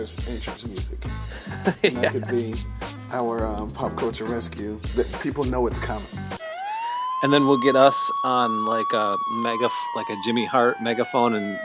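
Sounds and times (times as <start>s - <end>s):
speech: 0.0s - 6.3s, 7.2s - 11.6s
breathy burst: 1.1s - 1.8s
laughter: 1.3s - 2.7s
voice imitating an ambulance siren: 6.4s - 11.6s.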